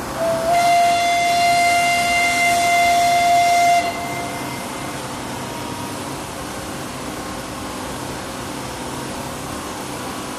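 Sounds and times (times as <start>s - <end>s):
blast site warning whistle: 0.2s - 5.9s.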